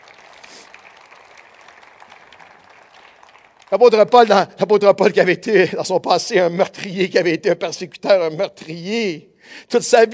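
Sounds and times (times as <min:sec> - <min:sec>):
congregation applauding at a Christian sermon: 0:00.0 - 0:04.4
speech: 0:03.7 - 0:10.1.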